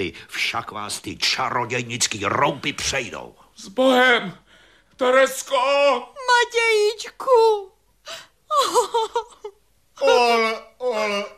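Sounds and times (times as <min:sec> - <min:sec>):
speech: 0:00.0 - 0:04.4, 0:05.0 - 0:11.3
woman sobbing and wailing: 0:08.1 - 0:11.3.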